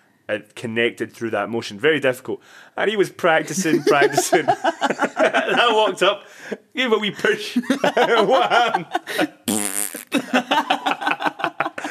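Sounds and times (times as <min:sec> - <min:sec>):
speech: 0:00.3 - 0:09.7
people laughing in a Tai Chi class: 0:03.4 - 0:06.2, 0:07.2 - 0:09.5, 0:10.1 - 0:11.8
person imitating a loud buzzy fart in a Tai Chi class: 0:09.4 - 0:10.2.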